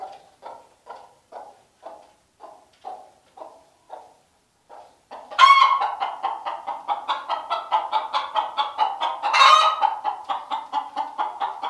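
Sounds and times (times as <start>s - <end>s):
hen clucking: 0.0s - 11.6s
hen squawking: 4.7s - 11.6s.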